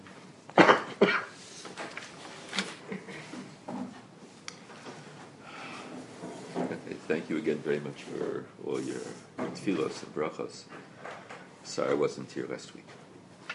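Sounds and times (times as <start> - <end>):
person coughing into elbow: 0.6 - 1.4
speech: 7.1 - 10.9, 11.7 - 13.0.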